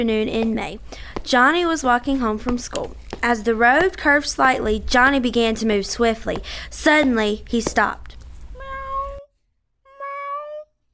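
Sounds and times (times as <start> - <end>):
speech: 0.0 - 8.2
stray tabby cat meowing low: 8.5 - 9.3, 9.9 - 10.7.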